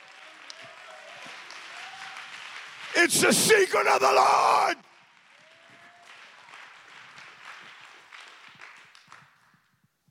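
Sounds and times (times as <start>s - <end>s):
audience clapping hands: 0.0s - 9.2s
speech: 3.0s - 4.8s.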